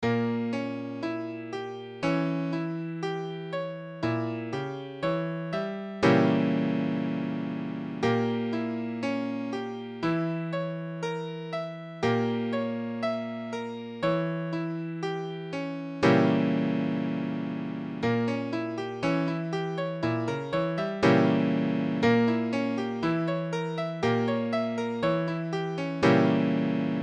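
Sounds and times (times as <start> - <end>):
piano playing a Bbdim7 chord: 0.0 - 27.0.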